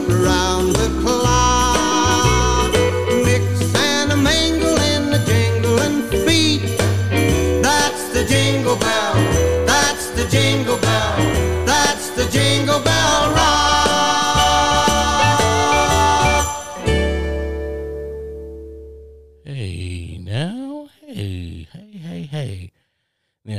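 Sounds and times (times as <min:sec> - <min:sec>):
bright jingle bells: 0:00.0 - 0:17.8
upbeat Christmas pop song: 0:00.0 - 0:22.6
person talking: 0:19.5 - 0:22.7.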